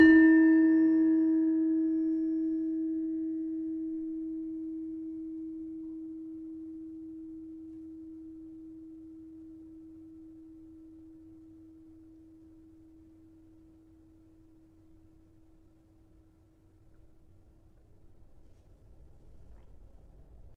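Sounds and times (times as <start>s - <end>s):
tuned gamelan: 0.0s - 4.8s.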